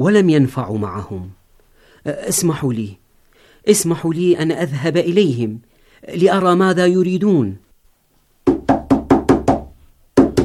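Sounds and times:
speech: 0.0 - 1.4, 2.0 - 3.0, 3.6 - 7.6
heavy pounding on a door: 8.4 - 10.4.

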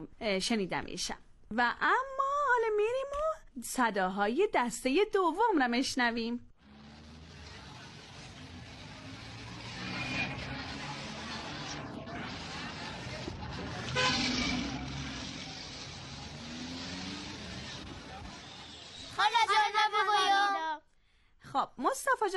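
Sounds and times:
speech: 0.0 - 6.5, 21.7 - 22.3
traffic rumbling along a busy street: 6.6 - 20.5
car horns honking: 13.8 - 15.2.

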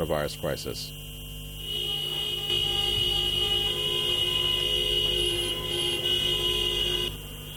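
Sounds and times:
low traffic rumble: 0.0 - 7.5
many taxi car horns honking in protest: 1.6 - 7.5.

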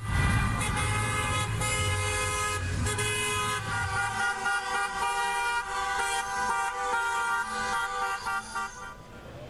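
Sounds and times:
car engine rumble: 0.0 - 9.4
car horns honking in a protest convoy in Spain: 0.0 - 9.4.

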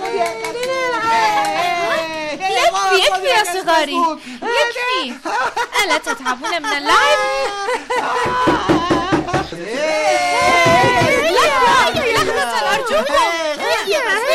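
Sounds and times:
children talking and laughing: 0.0 - 14.3
speech: 0.2 - 0.6, 3.0 - 8.8, 9.5 - 14.3
knocking on a door: 8.2 - 9.6, 10.4 - 12.3.

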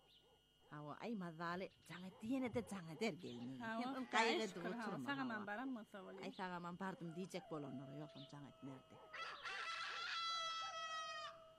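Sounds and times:
speech: 0.7 - 9.3
rooster crowing: 7.0 - 11.5.

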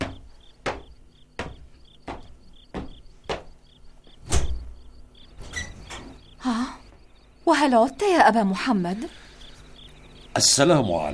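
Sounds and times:
door being opened with sharp wooden clunks and rattles: 0.0 - 7.1
crickets chirping: 0.0 - 11.1
speech: 6.4 - 6.8, 7.5 - 9.2, 10.4 - 11.1.

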